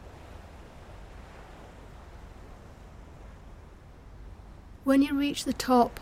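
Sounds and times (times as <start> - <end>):
surf rolling on a shore: 0.0 - 6.0
speech: 4.9 - 6.0.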